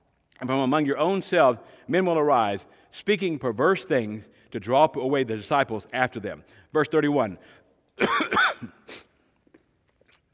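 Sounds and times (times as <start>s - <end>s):
speech: 0.4s - 9.0s
throat clearing from a tickled throat: 8.0s - 8.8s
person coughing from a tickled throat: 8.0s - 9.1s.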